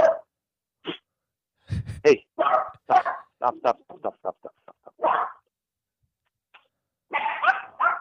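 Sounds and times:
dog barking at the front door: 0.0 - 0.3, 2.4 - 3.4, 4.9 - 5.5, 7.1 - 7.9
speech: 2.0 - 4.2.

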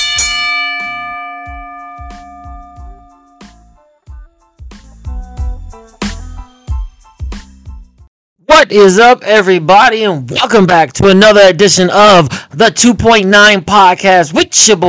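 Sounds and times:
bell ringing: 0.0 - 3.7
punchy rhythmic drum beat: 1.5 - 8.0
speech: 8.6 - 14.8.

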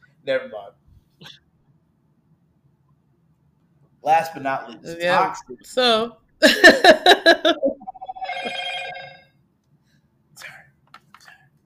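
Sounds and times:
speech: 0.2 - 1.4, 4.0 - 8.6
mobile phone ringing with incoming call: 7.6 - 9.3.

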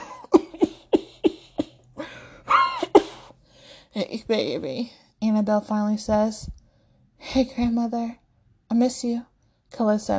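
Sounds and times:
woman coughing in sharp hacking bursts: 0.0 - 1.8, 2.5 - 3.3
speech: 4.0 - 6.6, 7.3 - 10.1.

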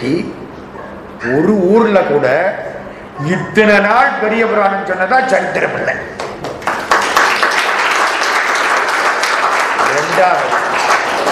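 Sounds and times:
speech: 0.0 - 0.4, 1.2 - 2.6, 3.2 - 6.2, 10.2 - 10.6
crowd applauding: 6.2 - 11.2.

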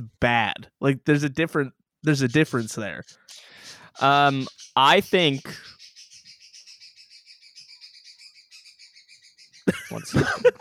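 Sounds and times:
speech: 0.0 - 5.7, 9.7 - 10.5
pet bird chirping and squawking: 2.0 - 10.2
laughter: 9.7 - 10.5.

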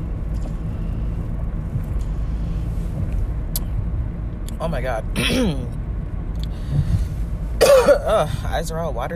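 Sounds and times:
car interior engine and road drone while driving to work: 0.0 - 9.1
speech: 4.6 - 5.8, 7.8 - 9.1.

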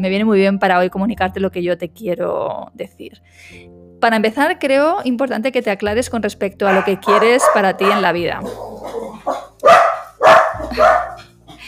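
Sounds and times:
speech: 0.0 - 9.8
dog barking: 6.7 - 11.3
dog whimpering yelp: 6.8 - 9.5.

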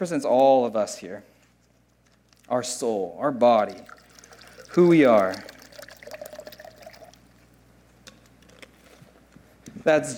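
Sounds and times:
speech: 0.0 - 1.4, 2.5 - 4.0, 4.7 - 5.5, 9.8 - 10.1
water pouring into a container: 3.6 - 7.4.

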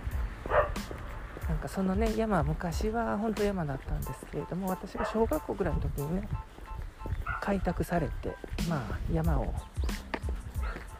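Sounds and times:
dog barking beside a road by a hill: 0.4 - 0.8, 4.9 - 5.4, 7.2 - 7.5, 10.6 - 10.9
speech: 1.6 - 6.6, 7.4 - 10.0.

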